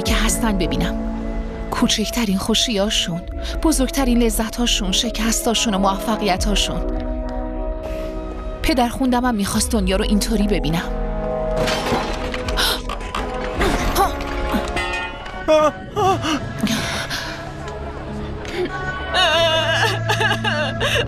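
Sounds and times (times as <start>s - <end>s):
music: 0.0s - 21.0s
speech: 0.4s - 1.1s, 1.7s - 7.1s, 8.7s - 11.0s, 11.6s - 12.0s
person crying and whimpering with breathy sobs and gasps: 15.4s - 17.2s, 18.5s - 21.0s.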